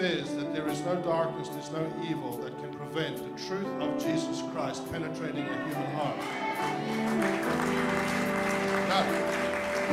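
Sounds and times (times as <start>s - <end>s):
speech: 0.0s - 8.2s, 8.9s - 9.9s
large gathering clapping: 6.0s - 9.9s.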